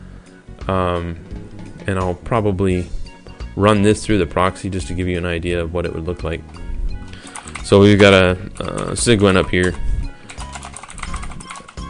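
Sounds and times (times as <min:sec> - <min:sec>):
speech: 0:00.7 - 0:03.0, 0:03.6 - 0:06.6, 0:07.7 - 0:09.9
rapid clicking of keys on a mechanical computer keyboard: 0:07.2 - 0:11.8.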